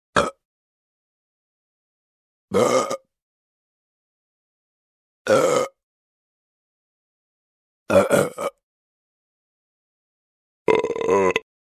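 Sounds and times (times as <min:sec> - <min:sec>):
burping: 0:00.1 - 0:00.5, 0:02.5 - 0:03.1, 0:05.3 - 0:05.8, 0:07.9 - 0:08.6, 0:10.6 - 0:11.5.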